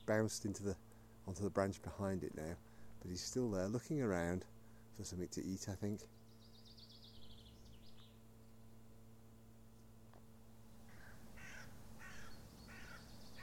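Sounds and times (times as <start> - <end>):
steady low hum: 0.0 - 13.4
speech: 0.1 - 6.2
small bird chirping: 6.1 - 8.6, 10.7 - 13.4
crows cawing while flying: 10.9 - 13.4.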